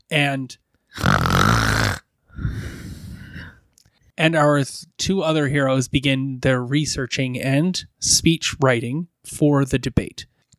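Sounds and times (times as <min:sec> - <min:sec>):
speech: 0:00.1 - 0:01.8, 0:04.2 - 0:10.5
loud snoring: 0:01.0 - 0:02.0.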